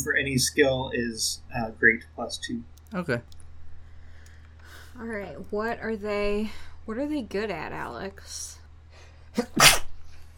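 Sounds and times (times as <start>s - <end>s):
speech: 0.2s - 3.4s, 5.0s - 8.6s, 9.4s - 9.8s
person sneezing: 9.4s - 10.0s.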